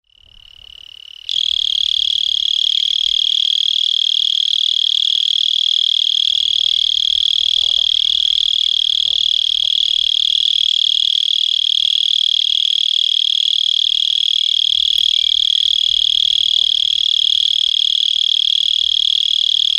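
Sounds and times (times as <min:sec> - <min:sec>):
mole cricket chirping: 0:00.0 - 0:19.7.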